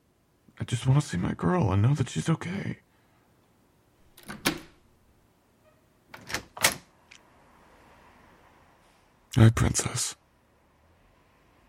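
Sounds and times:
speech: 0.6s - 2.8s, 9.4s - 10.2s
door clunk and rattle: 4.1s - 4.8s
door latch and handle clicks and thumps: 4.1s - 4.8s, 6.1s - 6.9s.

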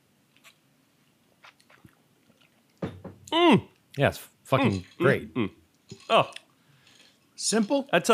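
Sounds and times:
person sipping a lime cocktail: 1.4s - 3.4s, 4.7s - 7.4s
slurping: 1.4s - 3.4s, 4.6s - 7.9s
dull thump: 2.8s - 3.3s
speech: 3.3s - 6.4s, 7.4s - 8.1s.

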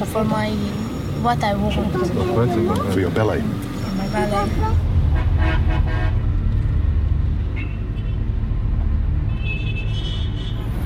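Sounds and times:
speech: 0.0s - 4.9s
idling car engines rumbling in backed-up traffic: 0.0s - 10.8s
car horns honking in morning traffic jam in Baghdad: 3.8s - 6.4s, 9.2s - 10.8s.

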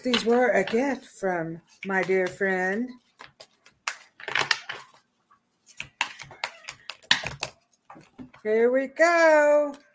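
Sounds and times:
speech: 0.0s - 3.0s, 8.4s - 9.8s
angel oracle cards being shuffled and one pulled from a deck: 1.7s - 8.4s.

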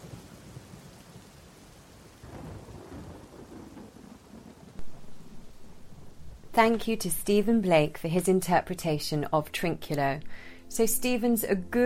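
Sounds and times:
low rumble of thunder: 0.0s - 8.8s
steady rain: 0.0s - 9.0s
sharp crack of thunder: 2.2s - 7.2s
speech: 6.6s - 11.8s.

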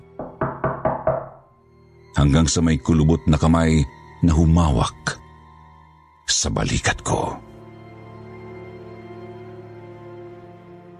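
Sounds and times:
firm knocks on a dirty wooden door of a fourth-floor unit: 0.2s - 1.5s
speech: 2.2s - 5.2s, 6.4s - 7.5s.

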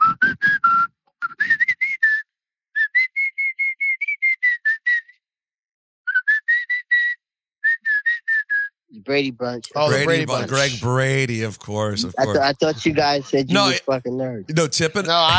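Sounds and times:
person whistling a melody: 0.0s - 5.2s, 6.1s - 8.7s
speech: 9.0s - 15.3s
laughter: 9.6s - 15.3s.

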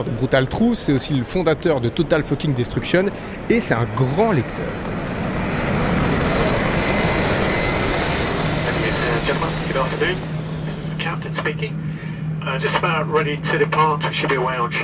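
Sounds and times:
speech: 0.0s - 5.1s, 9.8s - 10.4s, 11.1s - 14.8s
airplane engines roaring during takeoff: 0.0s - 14.8s
low sustained drone: 1.3s - 12.8s
indistinct voices: 2.2s - 11.8s.

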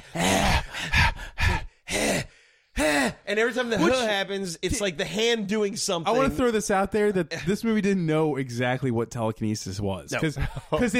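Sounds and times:
person imitating heavy raspy breathing from a film murder scene: 0.0s - 3.3s
speech: 3.3s - 10.9s.

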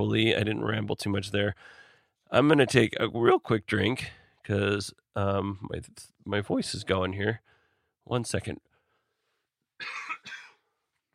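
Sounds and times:
speech: 0.0s - 8.7s, 9.8s - 10.4s
harsh coughs: 9.8s - 10.7s.

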